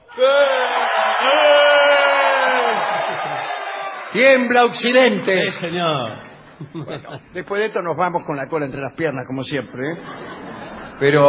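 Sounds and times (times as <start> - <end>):
audience shouting a cry in unison: 0.0 - 5.5
speech: 0.2 - 0.5, 4.2 - 11.2
laughter: 1.1 - 7.5, 9.7 - 11.2.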